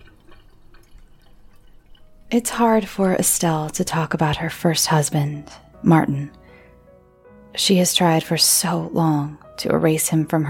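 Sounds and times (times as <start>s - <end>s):
faint drips of tea: 0.0s - 3.9s
tea being poured out: 0.0s - 4.5s
speech: 2.3s - 6.4s, 7.6s - 10.4s.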